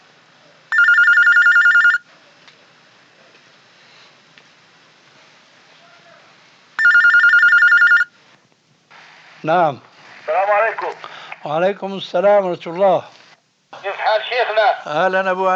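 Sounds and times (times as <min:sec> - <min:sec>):
telephone ringing with a trilling bell: 0:00.7 - 0:02.0, 0:06.8 - 0:08.2
faint telephone line hiss: 0:02.1 - 0:06.9, 0:08.1 - 0:15.5
speech: 0:09.4 - 0:13.2, 0:13.8 - 0:15.5.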